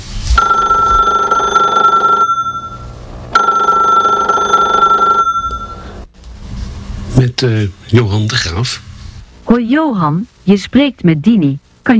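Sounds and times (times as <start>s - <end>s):
telephone ringing with electronic trill: 0.4s - 6.0s
speech: 7.4s - 8.9s, 9.5s - 11.9s.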